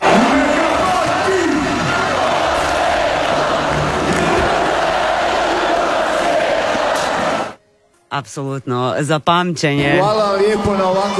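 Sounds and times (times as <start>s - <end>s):
huge crowd cheering and chanting in a town square in Croatia: 0.0s - 7.6s
speech: 8.2s - 11.1s.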